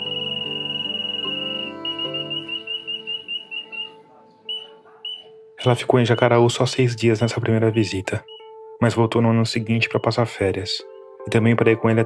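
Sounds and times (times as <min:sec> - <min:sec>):
bird-call whistle for hunting small birds trilling and chirping: 0:00.0 - 0:05.4, 0:08.2 - 0:08.5, 0:10.8 - 0:11.2
speech: 0:05.6 - 0:12.0.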